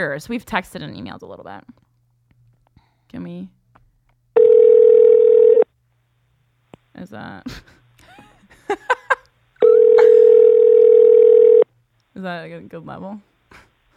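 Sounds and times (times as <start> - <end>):
speech: 0.0 - 1.8, 3.1 - 3.6, 7.0 - 7.8, 12.2 - 13.3
breathy sounds: 2.6 - 3.2
long steady electronic telephone ring tones on an outgoing call: 4.4 - 5.6, 9.6 - 11.6.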